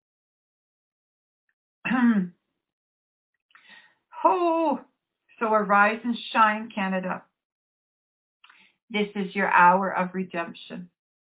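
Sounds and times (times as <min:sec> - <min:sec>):
throat clearing from a dry throat: 0:01.9 - 0:02.3
speech: 0:01.9 - 0:02.4, 0:04.2 - 0:07.3, 0:08.9 - 0:10.9.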